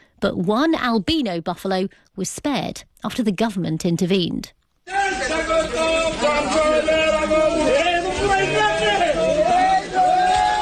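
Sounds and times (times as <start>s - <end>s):
speech: 0.2s - 4.6s
large crowd cheering and shouting: 4.8s - 10.6s.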